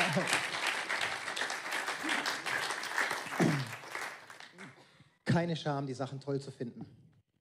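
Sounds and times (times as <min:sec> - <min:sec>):
crowd applauding: 0:00.0 - 0:04.8
speech: 0:00.2 - 0:00.4, 0:05.3 - 0:07.0.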